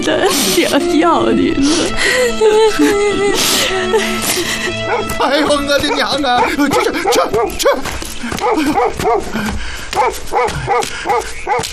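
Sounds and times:
speech: 0:00.0 - 0:11.7
laughter: 0:02.5 - 0:09.7
dog barking in quick insistent yaps: 0:04.9 - 0:05.2, 0:05.9 - 0:09.3, 0:09.9 - 0:11.7.

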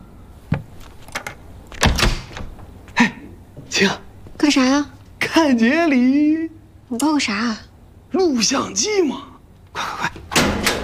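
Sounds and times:
door opening: 0:00.5 - 0:02.8, 0:10.2 - 0:10.8
speech: 0:03.8 - 0:09.9.

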